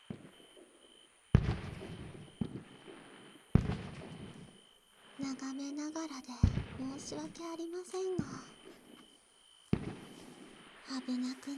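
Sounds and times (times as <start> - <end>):
fireworks bursting and crackling in small sparks: 0.0 - 0.7, 1.3 - 4.6, 6.3 - 11.5
speech: 5.3 - 8.6, 10.9 - 11.5.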